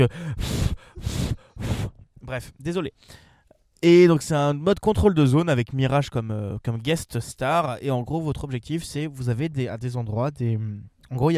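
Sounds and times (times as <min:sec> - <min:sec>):
speech: 0:00.0 - 0:01.1, 0:02.3 - 0:11.3
heavy annoyed breathing into a microphone: 0:00.0 - 0:02.1, 0:03.0 - 0:03.6.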